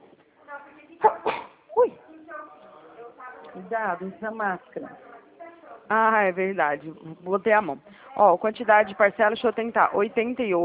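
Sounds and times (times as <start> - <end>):
murmured voices: 0.0 - 10.6
person sneezing: 1.0 - 1.7
speech: 3.6 - 5.1, 5.9 - 10.6.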